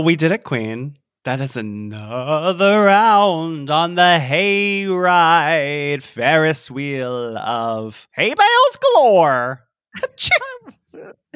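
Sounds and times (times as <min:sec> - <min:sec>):
speech: 0:00.0 - 0:11.3
person sneezing: 0:10.1 - 0:11.3.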